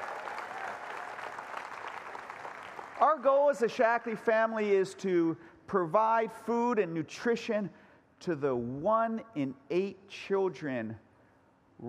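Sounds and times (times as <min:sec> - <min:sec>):
audience applause at a company gathering: 0:00.0 - 0:03.2
speech: 0:03.0 - 0:11.0.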